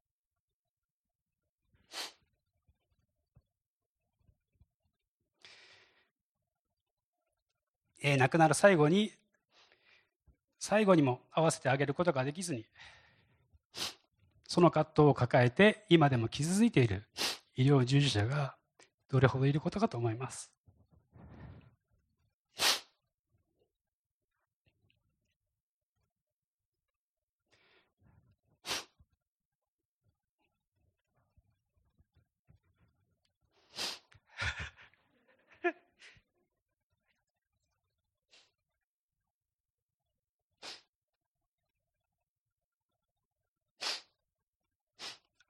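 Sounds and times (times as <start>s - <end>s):
person sneezing from allergies: 1.9s - 2.2s, 22.6s - 22.9s
person sniffling from allergies: 1.9s - 2.2s, 13.7s - 14.0s, 17.2s - 17.4s, 22.6s - 22.9s, 33.7s - 34.0s, 40.6s - 40.9s, 43.8s - 44.1s, 45.0s - 45.3s
breathing: 5.4s - 6.2s, 9.5s - 10.2s, 12.7s - 14.0s, 27.5s - 28.4s
speech: 8.0s - 9.2s, 10.6s - 13.0s, 13.7s - 20.6s.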